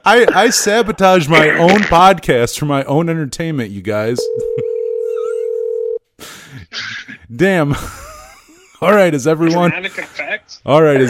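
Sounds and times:
speech: 0.0s - 4.7s, 6.7s - 8.0s, 8.8s - 11.0s
steady phone line tone after a call is hung up: 4.2s - 6.0s.

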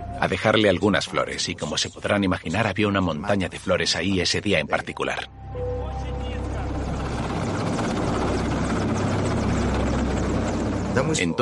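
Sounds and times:
speech: 0.2s - 5.7s, 11.0s - 11.4s
descending helicopter rotor chopping: 6.1s - 11.4s.

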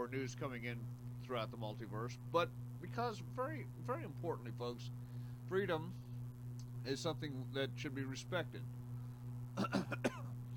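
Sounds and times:
speech: 0.0s - 6.1s, 6.8s - 8.8s, 9.6s - 10.3s
steady low electrical hum: 0.0s - 10.5s
short raspy coughs: 9.6s - 10.4s
throat clearing: 9.6s - 10.4s.

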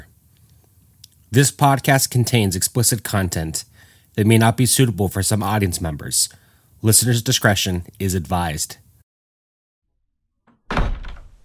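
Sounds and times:
speech: 1.3s - 8.8s
hut door thudding open: 10.4s - 11.4s.

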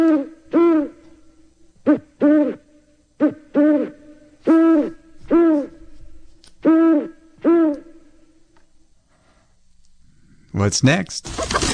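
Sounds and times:
owl hooting in two-note calls: 0.0s - 1.2s, 1.8s - 5.9s, 6.6s - 8.1s
speech: 10.6s - 11.7s.

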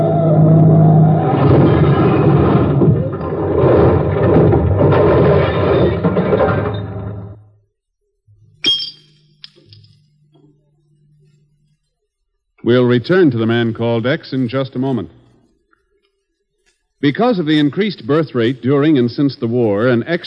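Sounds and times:
car engine roaring as car drives off a cliff: 0.0s - 6.4s
speech: 12.7s - 15.2s, 17.0s - 20.2s.

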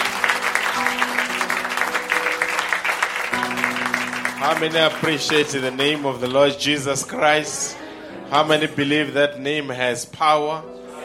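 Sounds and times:
people at a Christian church service clapping: 0.0s - 6.6s
faint sustained musical tone: 0.0s - 9.2s
speech: 4.4s - 10.7s.

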